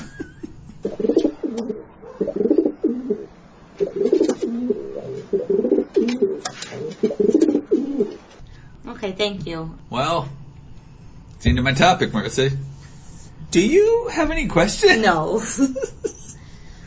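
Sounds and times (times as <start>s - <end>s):
laughter: 0.0s - 0.8s, 15.4s - 16.4s
pigeon cooing: 0.8s - 8.2s
speech: 1.0s - 2.6s, 9.2s - 10.4s, 11.4s - 12.7s, 13.5s - 16.0s
hiss: 2.2s - 16.8s.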